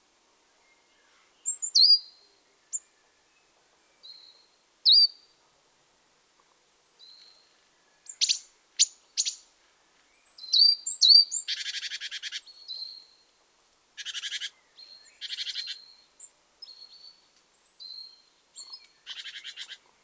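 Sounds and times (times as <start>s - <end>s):
great tit Parus major calls: 1.4s - 2.9s, 4.0s - 5.3s, 7.0s - 9.4s, 10.2s - 13.2s, 14.0s - 19.8s.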